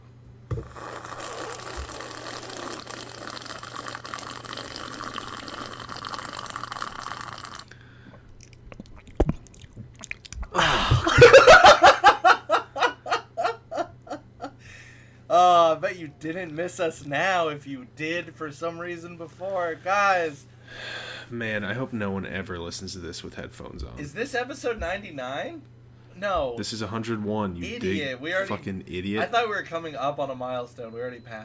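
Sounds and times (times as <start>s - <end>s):
person slurping hot coffee: 0.0s - 11.1s
rhythmic breathy laughter: 10.5s - 13.9s
speech: 16.2s - 31.4s.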